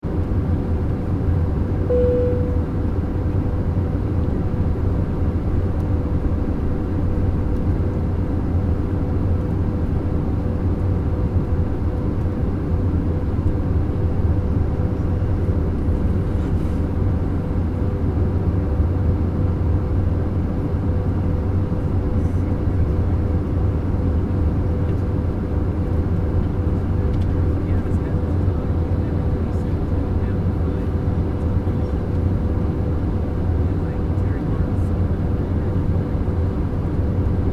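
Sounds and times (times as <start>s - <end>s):
aircraft interior room tone: 0.0s - 37.5s
aircraft page beep: 1.9s - 2.6s.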